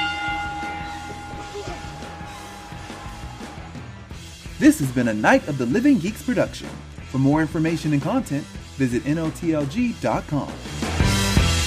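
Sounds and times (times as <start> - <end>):
bell ringing: 0.0 - 3.8
speech: 4.6 - 10.8.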